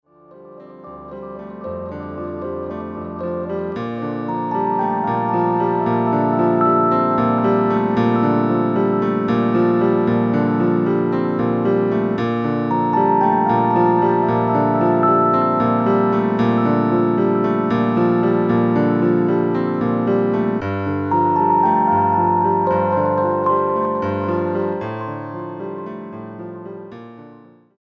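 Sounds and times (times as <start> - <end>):
Rhodes electric piano: 0.1 - 27.7.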